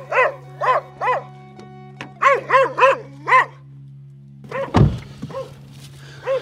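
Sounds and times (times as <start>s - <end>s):
dog barking at a reporter knocking on doors: 0.0s - 1.3s, 2.2s - 3.6s, 4.5s - 5.6s, 6.2s - 6.4s
thump: 4.7s - 5.4s.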